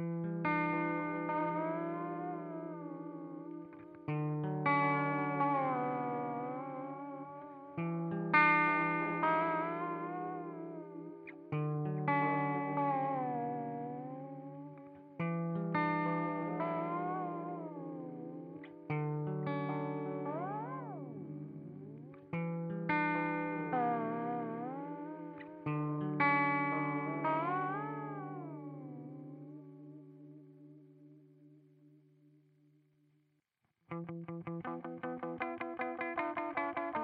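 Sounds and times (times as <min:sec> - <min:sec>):
guitar played through a videotape echo effects pedal with garbled warbling tone: 0:00.0 - 0:37.0.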